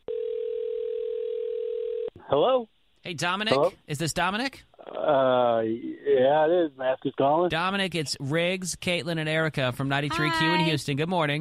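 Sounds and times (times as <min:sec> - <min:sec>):
telephone ring tone of a call ringing out: 0:00.1 - 0:02.1
speech: 0:02.3 - 0:11.3.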